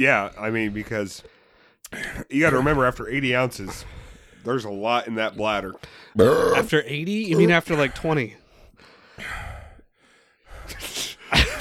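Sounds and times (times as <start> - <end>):
speech: 0.0 - 1.3, 1.9 - 8.4
heavy breathing: 3.6 - 4.6, 5.4 - 10.7.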